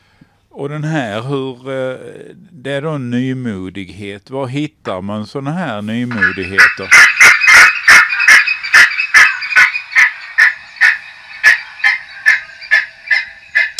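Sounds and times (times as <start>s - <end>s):
speech: 0.6s - 7.1s
gull alarm call: 6.1s - 13.7s.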